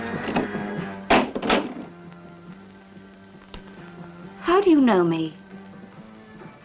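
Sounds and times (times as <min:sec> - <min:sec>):
door swinging shut with a solid thunk: 0:00.2 - 0:01.9
speech: 0:04.7 - 0:05.4.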